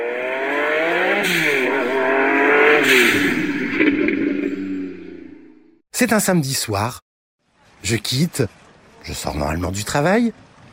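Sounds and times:
sports car engine revving hard: 0.0s - 5.6s
speech: 6.0s - 7.0s, 7.8s - 10.4s.

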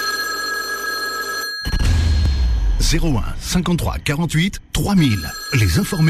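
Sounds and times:
telephone bell ringing: 0.0s - 2.1s, 5.0s - 6.0s
speech: 2.8s - 6.0s.

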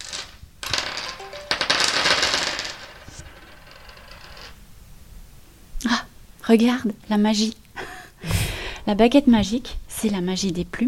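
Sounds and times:
dice rattling and tumbling across a tabletop: 0.0s - 4.5s
speech: 5.8s - 7.6s, 8.9s - 10.8s.

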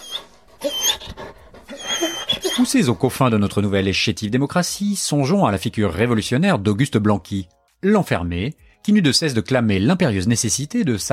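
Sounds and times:
small dog whimpering: 0.0s - 3.0s
small dog panting: 0.0s - 3.5s
speech: 2.6s - 11.1s.

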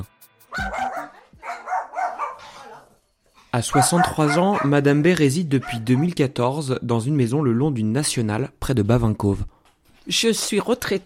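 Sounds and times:
small Yorkshire terrier barking and yapping: 0.5s - 3.0s, 3.7s - 4.8s, 5.6s - 6.2s
speech: 3.6s - 9.5s, 10.1s - 11.0s.

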